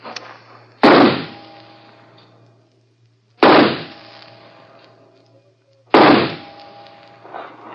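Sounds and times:
faint low hum: 0.0s - 7.7s
six-round handgun shots fired at a target during a shooting contest: 0.8s - 1.4s, 3.4s - 4.0s, 5.9s - 6.6s.

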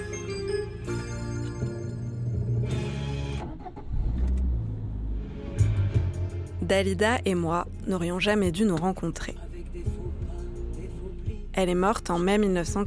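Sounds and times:
moving car engine rumble heard from inside: 0.1s - 12.8s
road noise from a moving car: 2.1s - 12.8s
speech: 6.7s - 9.4s, 11.6s - 12.8s.

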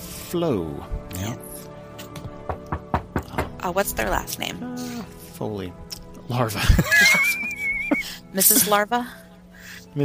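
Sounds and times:
speech: 0.3s - 1.7s, 3.6s - 10.0s
dull knocks on a door: 2.1s - 3.6s
laughter: 6.5s - 8.8s.

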